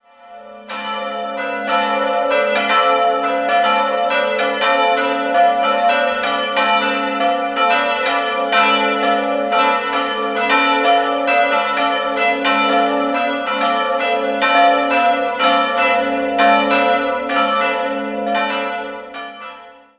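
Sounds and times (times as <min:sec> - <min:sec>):
parish church bells in Weissenburg ringing: 0:00.0 - 0:19.9.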